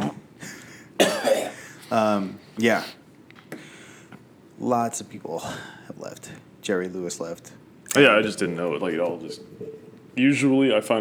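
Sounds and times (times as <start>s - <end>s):
loud cough into a microphone: 1.0s - 1.8s
speech: 1.9s - 3.0s, 4.6s - 10.9s.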